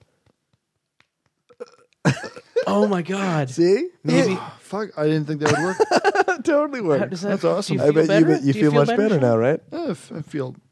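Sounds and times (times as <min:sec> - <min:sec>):
grown man giving a short deep loud burp: 0:01.5 - 0:02.9
speech: 0:01.6 - 0:10.6
laughter: 0:02.1 - 0:03.5, 0:05.4 - 0:10.4.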